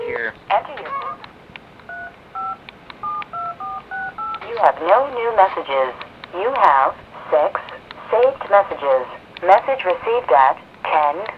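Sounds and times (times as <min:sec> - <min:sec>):
telephone touch-tone keypad beeps: 0:01.9 - 0:04.6
speech: 0:04.6 - 0:11.3.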